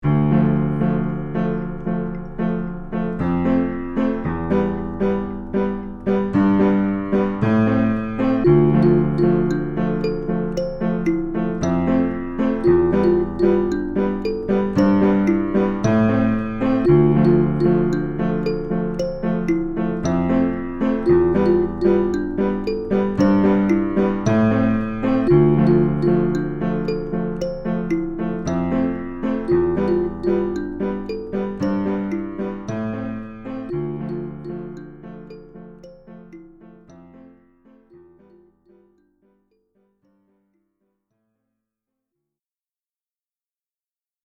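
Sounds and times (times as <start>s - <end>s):
piano: 0.0s - 39.2s
kalimba: 7.8s - 39.1s.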